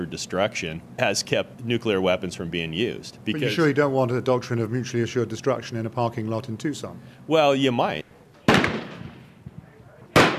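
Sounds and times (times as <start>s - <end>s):
speech: 0.0s - 8.1s
antique pistols and rifles fired at a shooting range near Phoenix: 8.5s - 9.3s, 10.1s - 10.3s.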